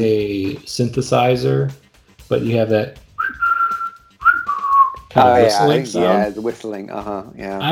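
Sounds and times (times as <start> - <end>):
speech: 0.0 - 3.0, 5.2 - 7.7
whistle: 3.1 - 5.2
strong vocals in a song: 5.0 - 6.6.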